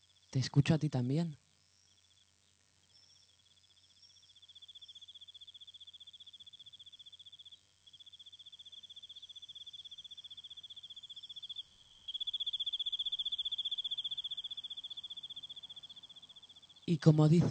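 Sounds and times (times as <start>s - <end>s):
crickets chirping at night: 0.0s - 17.4s
speech: 0.3s - 1.4s, 16.9s - 17.4s.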